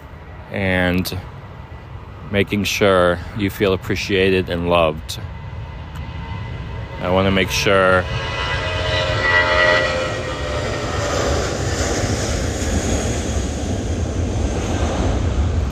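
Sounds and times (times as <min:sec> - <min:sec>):
passenger jet passing overhead: 0:00.0 - 0:15.7
speech: 0:00.5 - 0:01.4, 0:02.3 - 0:05.4, 0:07.0 - 0:08.4.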